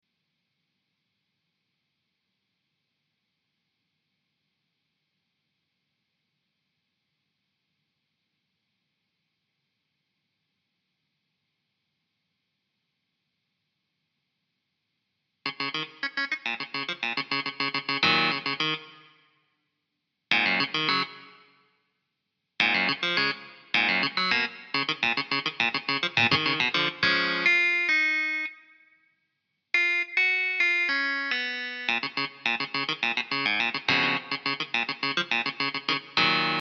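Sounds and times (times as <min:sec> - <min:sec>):
clavinet: 0:15.5 - 0:19.1, 0:20.3 - 0:21.4, 0:22.6 - 0:28.6, 0:29.8 - 0:36.6.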